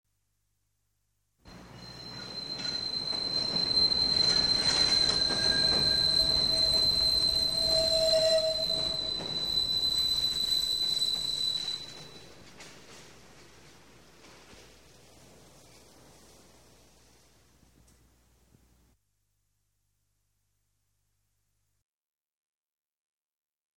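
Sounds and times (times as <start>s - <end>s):
metro train: 1.5s - 17.3s.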